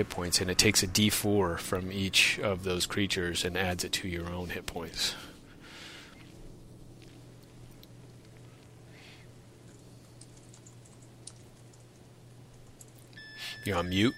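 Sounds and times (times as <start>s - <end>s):
speech: 0.0s - 5.3s, 13.6s - 14.1s
steady low electrical hum: 0.0s - 14.1s
computer keyboard typing: 9.6s - 13.3s.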